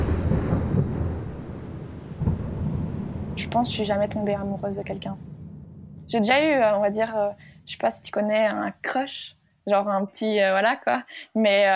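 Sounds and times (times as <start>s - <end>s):
thunder rumbling in a rain storm: 0.0s - 9.3s
speech: 3.5s - 5.3s, 6.1s - 11.7s.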